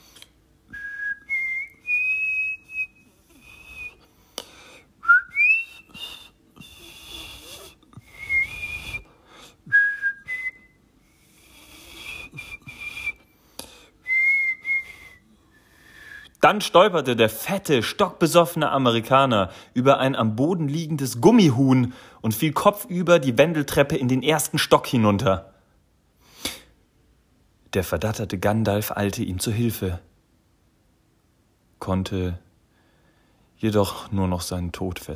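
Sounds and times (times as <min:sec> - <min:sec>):
man whistling a cheerful bouncy melody: 0:00.7 - 0:04.1, 0:05.0 - 0:09.1, 0:09.7 - 0:10.8, 0:11.5 - 0:13.3, 0:14.0 - 0:16.4
speech: 0:16.5 - 0:25.5, 0:27.7 - 0:30.1, 0:31.8 - 0:32.5, 0:33.6 - 0:35.1.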